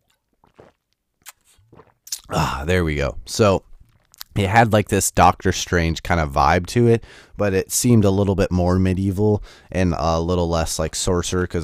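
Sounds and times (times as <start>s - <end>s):
person sipping water with soft wet slurping and a gulp: 0.0s - 2.6s, 3.7s - 4.4s
lips clicking while swallowing: 0.6s - 2.3s
speech: 2.3s - 3.7s, 4.4s - 11.6s.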